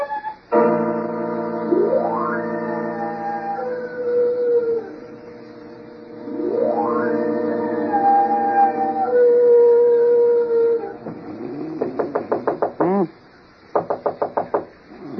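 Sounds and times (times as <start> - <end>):
long wavering howl: 0.0 - 0.5, 1.7 - 5.4, 6.2 - 11.6
knocking on a bedroom door: 11.8 - 13.1, 13.7 - 14.8.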